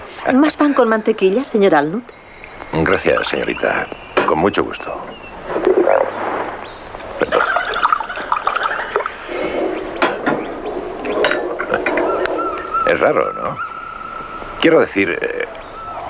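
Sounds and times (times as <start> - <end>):
speech: 0.2 - 5.2, 7.2 - 7.4, 12.9 - 13.7, 14.6 - 15.6
stomach rumbling and gurgling: 5.4 - 7.2, 8.2 - 13.0
laughter: 7.2 - 9.3.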